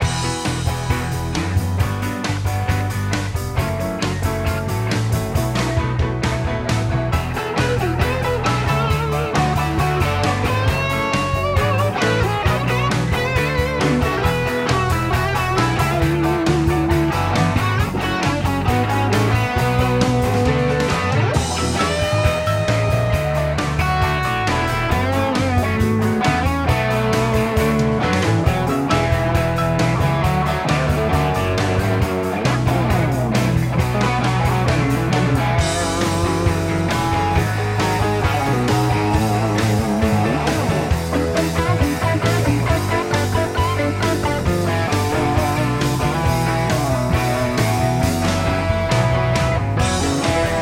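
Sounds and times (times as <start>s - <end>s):
rock and roll music with solo: 0.0s - 50.6s.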